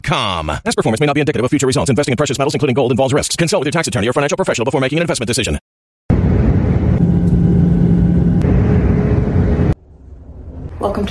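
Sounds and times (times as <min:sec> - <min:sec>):
speech: 0:00.1 - 0:05.6, 0:10.8 - 0:11.0
car engine rumbling: 0:06.1 - 0:11.0.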